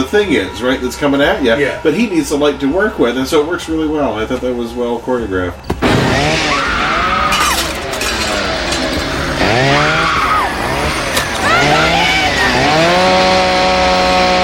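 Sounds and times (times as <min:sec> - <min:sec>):
speech: 0:00.1 - 0:06.7
chainsaw engine revving: 0:05.8 - 0:14.4.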